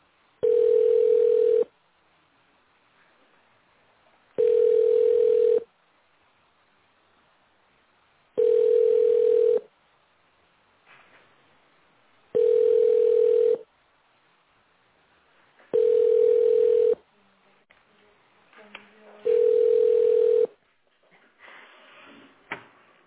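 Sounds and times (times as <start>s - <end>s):
telephone ringback tone while waiting on the line: 0.4s - 1.7s, 4.4s - 5.7s, 8.4s - 9.7s, 12.4s - 13.6s, 15.7s - 17.0s, 19.2s - 20.5s.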